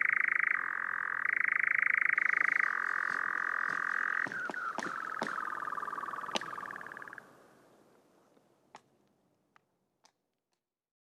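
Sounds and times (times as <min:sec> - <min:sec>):
European nightjar churring: 0:00.0 - 0:07.2
sharp clicks: 0:02.8 - 0:07.2.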